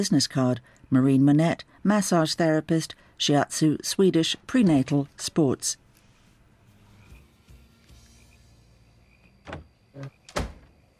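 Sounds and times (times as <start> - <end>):
speech: 0.0 - 5.8, 9.5 - 10.2
door closing with latch rattles: 9.4 - 10.8.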